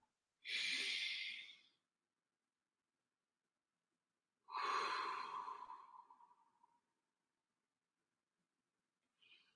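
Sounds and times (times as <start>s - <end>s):
deep breath in and out: 0.4s - 1.8s, 4.5s - 6.9s.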